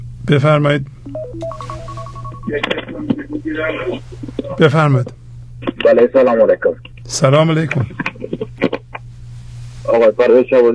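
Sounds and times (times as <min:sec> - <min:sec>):
steady hum: 0:00.0 - 0:10.7
speech: 0:00.3 - 0:01.7, 0:02.5 - 0:08.1, 0:09.9 - 0:10.7
electronic telephone tones as a phone line connects a caller: 0:01.1 - 0:03.4.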